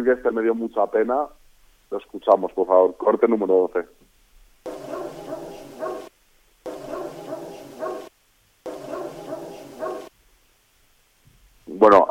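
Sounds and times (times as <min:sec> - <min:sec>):
speech: 0:00.0 - 0:04.0
dogs barking at a sanatorium: 0:04.7 - 0:06.1, 0:06.7 - 0:08.1, 0:08.7 - 0:10.1.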